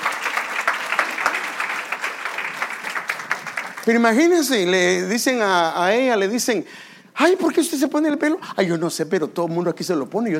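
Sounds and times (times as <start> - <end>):
audience applauding: 0.0 - 4.5
speech: 3.9 - 10.3.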